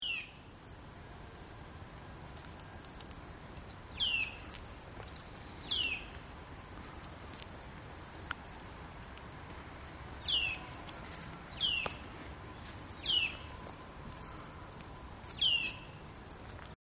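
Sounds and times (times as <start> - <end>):
Eurasian nuthatch Sitta europaea calling: 3.9 - 4.5, 5.2 - 6.1, 9.7 - 10.8, 11.5 - 12.0, 12.9 - 16.2.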